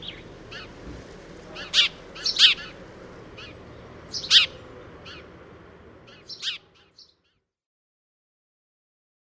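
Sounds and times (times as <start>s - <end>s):
house sparrow chirping in short sharp notes: 0.0s - 0.8s, 1.5s - 5.4s, 6.0s - 7.5s
quieter background twittering: 1.6s - 5.3s, 6.1s - 7.4s.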